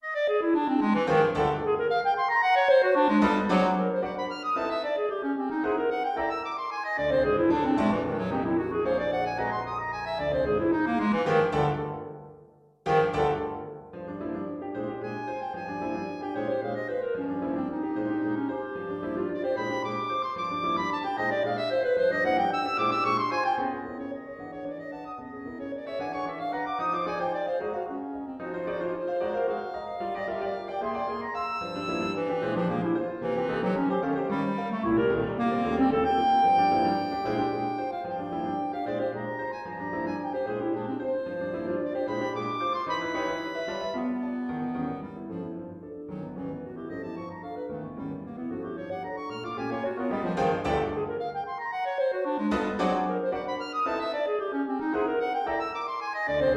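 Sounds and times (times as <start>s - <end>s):
clarinet playing energetic arpeggios: 0.0s - 56.5s
piano playing: 0.0s - 56.5s.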